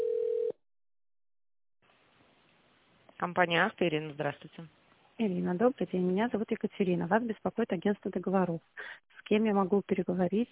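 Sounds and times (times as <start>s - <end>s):
telephone ringback tone: 0.0s - 0.6s
speech: 3.2s - 10.4s.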